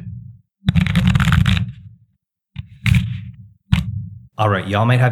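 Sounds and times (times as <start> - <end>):
tarot cards being shuffled and riffled: 0.7 - 1.7
speech: 4.4 - 5.1.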